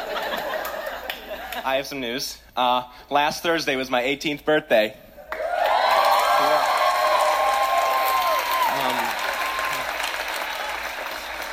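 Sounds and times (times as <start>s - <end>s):
speech: 1.6s - 5.0s
full crowd applauding: 5.3s - 11.5s
long whoop: 5.4s - 10.0s
scattered cheers: 5.4s - 11.2s.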